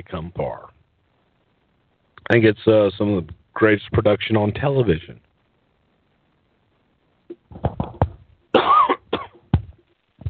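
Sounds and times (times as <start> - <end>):
speech: 0.0 - 0.8, 2.2 - 5.3
harsh coughing with rasping hack: 8.6 - 9.4.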